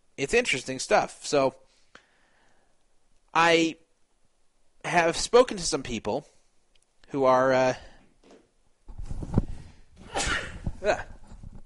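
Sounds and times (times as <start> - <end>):
speech: 0.2 - 1.6, 3.4 - 3.8, 4.8 - 6.3, 7.1 - 7.9, 10.8 - 11.1
radio host sneezing: 10.0 - 11.1.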